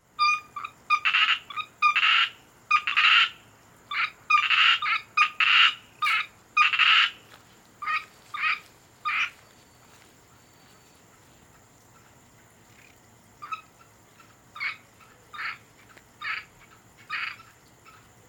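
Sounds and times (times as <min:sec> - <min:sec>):
Asian grass frog rasping pulsed croaks: 0:00.2 - 0:07.2, 0:12.7 - 0:18.2
faint high hiss: 0:01.5 - 0:18.2.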